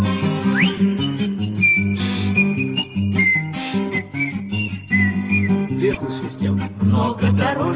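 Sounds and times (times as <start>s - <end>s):
steady instrumental accompaniment: 0.0s - 7.6s
bright whistled melody: 0.1s - 6.0s.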